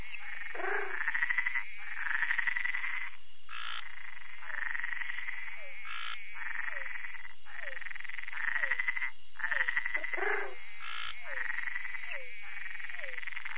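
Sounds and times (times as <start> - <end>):
Bokermannohyla luctuosa treefrog buzzy pulsed calls: 0.0 - 13.5.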